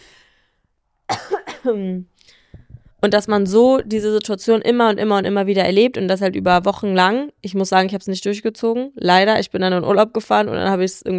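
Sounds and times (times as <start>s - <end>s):
person coughing: 1.1s - 1.8s
speech: 1.6s - 2.4s, 3.0s - 11.1s.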